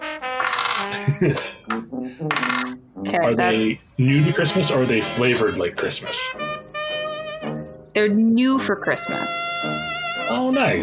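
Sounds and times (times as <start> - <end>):
Christmas gift dice rattling and clattering across a hard tabletop: 0.4 - 0.9, 2.3 - 2.7
laughter: 0.9 - 1.6
speech: 1.0 - 6.6, 8.0 - 10.8.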